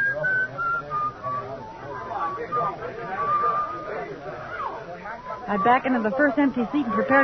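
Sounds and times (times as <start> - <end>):
person whistling a wandering tune: 0.0 - 4.0
murmuring voices and crowd noise: 0.0 - 7.2
speech: 5.5 - 7.2.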